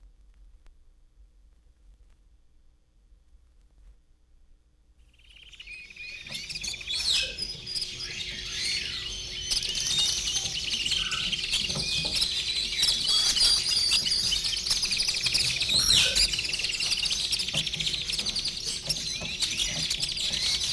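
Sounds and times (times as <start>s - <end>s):
tropical birds: 5.0s - 20.7s.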